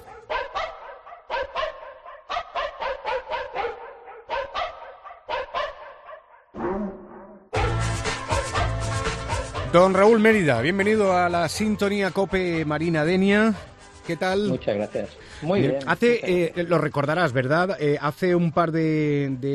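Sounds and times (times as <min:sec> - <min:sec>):
dog barking: 0:00.0 - 0:06.6, 0:07.6 - 0:09.8
speech: 0:09.7 - 0:19.5.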